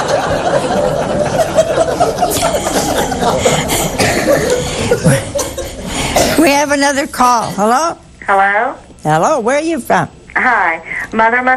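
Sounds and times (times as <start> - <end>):
people chuckling: 0.0 - 6.0
people coughing: 0.0 - 6.7
speech: 6.8 - 11.5.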